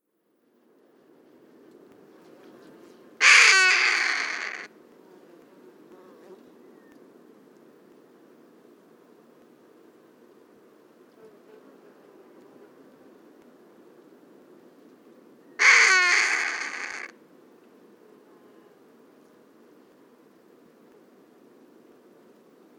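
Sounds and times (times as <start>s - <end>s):
Harris's hawk: 3.2s - 4.7s, 15.6s - 17.1s.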